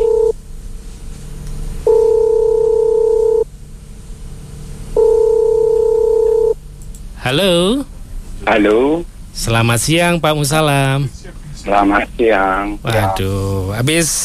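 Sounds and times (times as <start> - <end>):
telephone line ringing tone as a call is placed: 0.0 - 0.4, 1.9 - 3.4, 5.0 - 6.6
speech: 7.2 - 14.2.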